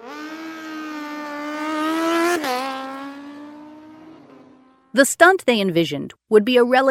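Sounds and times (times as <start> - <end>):
speedway motorcycle engine revving: 0.0 - 5.0
speech: 5.0 - 6.8.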